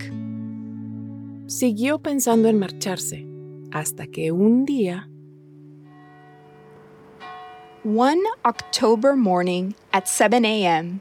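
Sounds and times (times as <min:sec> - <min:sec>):
speech: 0:01.5 - 0:05.1, 0:07.8 - 0:11.0
church bells of a school's church ringing: 0:05.9 - 0:10.7.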